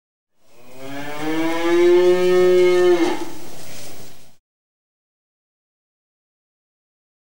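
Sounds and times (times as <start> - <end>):
cow mooing: 0.6 - 3.4.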